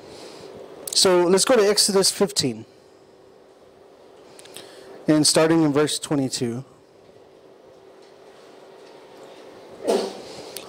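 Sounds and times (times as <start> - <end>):
speech: 1.0 - 2.8, 5.1 - 6.7
person sneezing: 9.8 - 10.4.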